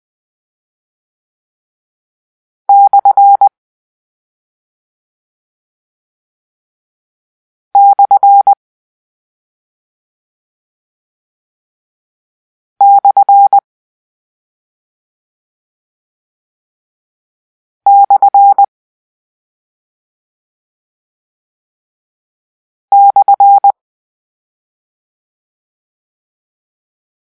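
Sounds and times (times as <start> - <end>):
morse code: 2.7 - 3.5, 7.8 - 8.6, 12.8 - 13.6, 17.9 - 18.7, 22.9 - 23.7.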